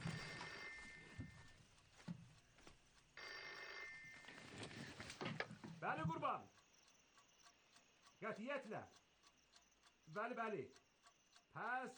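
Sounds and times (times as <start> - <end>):
telephone ringing: 0.0 - 1.4, 3.2 - 4.9
speech: 5.8 - 6.6, 8.2 - 9.0, 10.1 - 10.8, 11.6 - 11.9.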